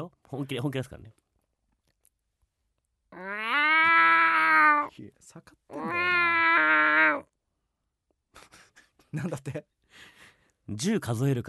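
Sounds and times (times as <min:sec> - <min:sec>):
speech: 0:00.0 - 0:01.2, 0:05.0 - 0:06.7, 0:09.1 - 0:10.1, 0:10.7 - 0:11.4
person imitating a nasal cat meow: 0:03.1 - 0:04.9, 0:05.7 - 0:07.3.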